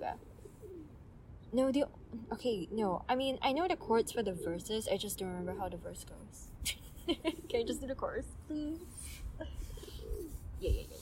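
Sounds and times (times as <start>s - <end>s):
hum: 0.0s - 10.9s
pigeon cooing: 0.1s - 1.0s, 9.4s - 10.9s
speech: 1.5s - 10.9s.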